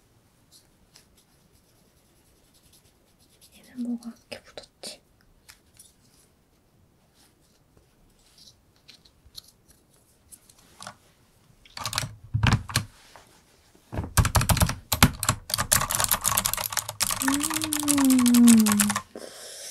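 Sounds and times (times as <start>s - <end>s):
speech: 3.8s - 4.4s
fingers typing on a computer keyboard: 11.7s - 12.9s, 14.2s - 19.1s.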